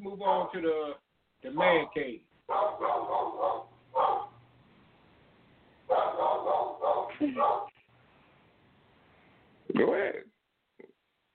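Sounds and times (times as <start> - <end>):
speech: 0.0 - 3.7, 7.2 - 7.7, 9.7 - 10.2
dog barking in coarse loud bursts: 2.5 - 4.4, 5.9 - 7.8.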